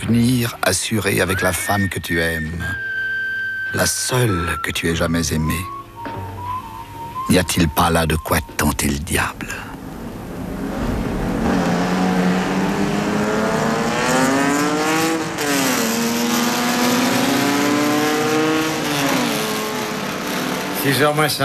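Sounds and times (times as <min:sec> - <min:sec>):
speech: 0:00.1 - 0:02.9, 0:03.7 - 0:06.3, 0:07.3 - 0:09.7, 0:20.8 - 0:21.4
race car engine roaring on a track: 0:09.5 - 0:21.4.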